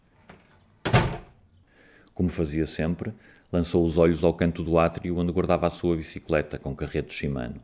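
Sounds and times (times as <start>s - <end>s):
apartment building front door opening with a broad clunk: 0.2s - 1.4s
apartment building front door latch click: 0.8s - 1.4s
speech: 2.2s - 7.6s.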